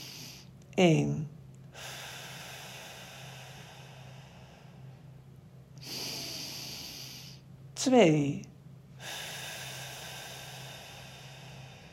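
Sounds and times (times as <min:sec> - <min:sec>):
deep breathing in through nose and out through mouth: 0:00.0 - 0:00.6, 0:01.7 - 0:05.2, 0:05.8 - 0:07.6, 0:09.0 - 0:11.9
low constant hum: 0:00.0 - 0:11.9
speech: 0:00.8 - 0:01.9, 0:07.8 - 0:08.5.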